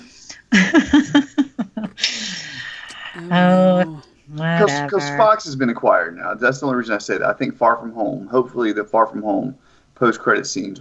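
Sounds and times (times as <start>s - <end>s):
rhythmic laughter: 0.5s - 2.7s
short voiced exclamation: 3.1s - 5.3s
speech: 4.6s - 10.7s.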